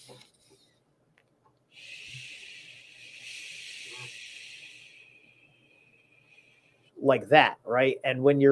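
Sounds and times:
long steady whispered shh exhale: 1.8s - 6.8s
speech: 7.0s - 8.5s.

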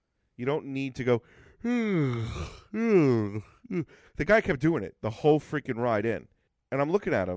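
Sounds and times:
speech: 0.4s - 7.3s
person imitating exaggerated loud yawning of a man on a train: 1.6s - 3.9s.

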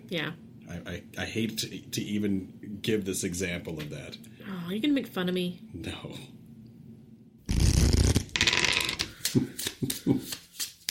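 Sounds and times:
speech: 0.1s - 6.4s, 10.1s - 10.4s
overhand shuffling a deck of cards: 7.5s - 10.9s.

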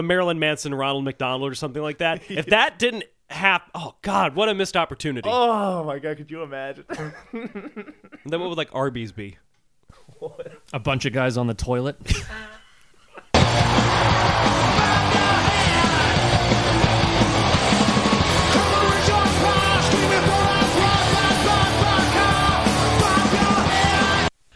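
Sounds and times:
speech: 0.0s - 12.6s
laughter: 6.9s - 8.3s, 12.0s - 16.2s
wall of distorted heavy metal guitars: 13.3s - 24.3s
pounding heavy metal drums: 13.4s - 24.0s
harsh screamed heavy metal vocals: 13.4s - 24.3s.

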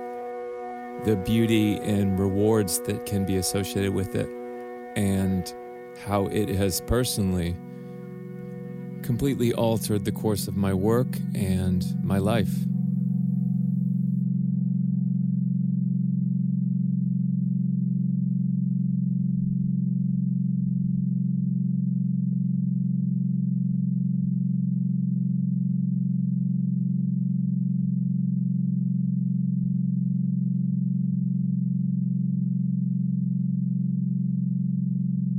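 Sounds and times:
sine-wave drone of a sound installation in New York City: 0.0s - 35.3s
speech: 1.0s - 4.4s, 5.0s - 7.8s, 9.0s - 12.7s.

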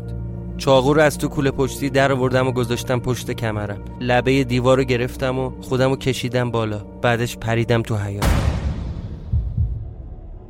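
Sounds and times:
speech: 0.6s - 8.5s
low fast heartbeat sound effect: 8.5s - 10.4s.

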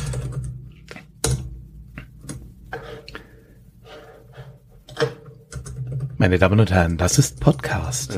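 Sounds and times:
typing on a computer keyboard: 5.5s - 6.1s
speech: 6.2s - 8.1s.

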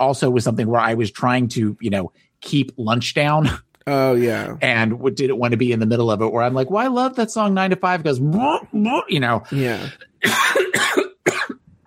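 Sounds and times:
speech: 0.0s - 10.6s
person coughing harshly: 9.6s - 11.8s.

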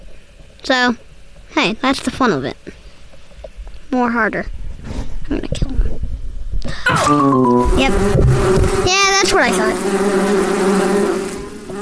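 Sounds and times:
speech: 0.7s - 2.8s, 3.9s - 4.6s, 6.7s - 11.2s
bees buzzing in a video game: 6.9s - 11.7s.

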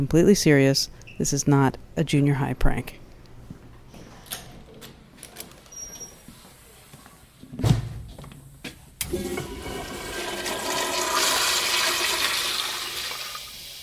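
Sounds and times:
speech: 0.0s - 3.0s
toilet flushing: 9.0s - 13.8s.

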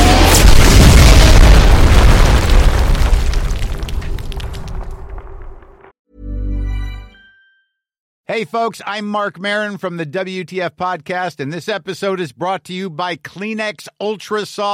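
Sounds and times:
massive explosion with deep broadband roar: 0.0s - 5.9s
speech: 8.3s - 14.7s.

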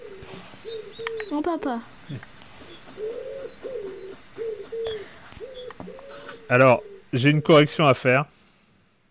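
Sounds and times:
pigeon cooing by a bridge near a château: 0.0s - 1.5s, 2.1s - 7.6s
smaller birds chirping: 0.0s - 9.0s
speech: 1.3s - 2.4s, 6.5s - 8.3s.

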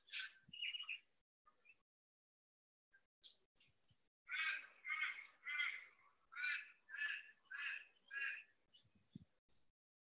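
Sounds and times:
birds calling outdoors: 0.0s - 1.8s, 3.2s - 9.3s.

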